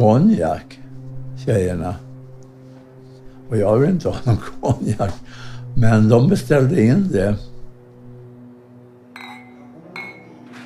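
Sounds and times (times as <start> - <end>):
speech: 0.0 - 0.8, 1.4 - 2.0, 3.5 - 7.5
glasses clinking in a toast: 9.1 - 10.6.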